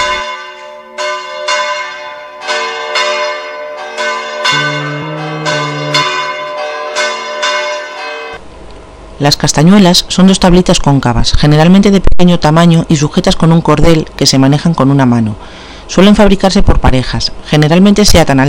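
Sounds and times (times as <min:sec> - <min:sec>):
church bell swung with a counterweight ringing: 0:00.0 - 0:08.4
speech: 0:09.2 - 0:18.4.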